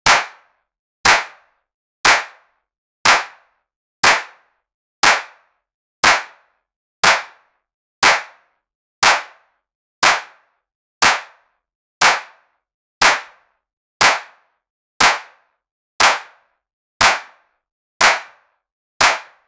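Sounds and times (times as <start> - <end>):
hand clap: 0.0 - 0.4, 1.0 - 1.4, 2.0 - 2.4, 3.0 - 3.4, 4.0 - 4.4, 5.0 - 5.4, 6.0 - 6.4, 7.0 - 7.3, 8.0 - 8.4, 9.0 - 9.3, 10.0 - 10.3, 11.0 - 11.3, 12.0 - 12.3, 13.0 - 13.3, 14.0 - 14.3, 15.0 - 15.3, 16.0 - 16.3, 17.0 - 17.3, 18.0 - 18.4, 19.0 - 19.4.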